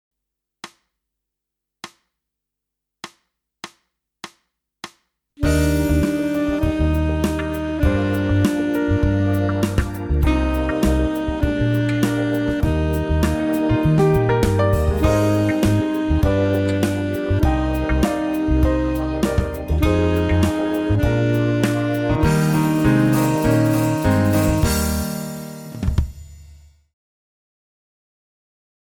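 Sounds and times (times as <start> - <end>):
alto saxophone playing legato exercises: 5.4 - 25.7.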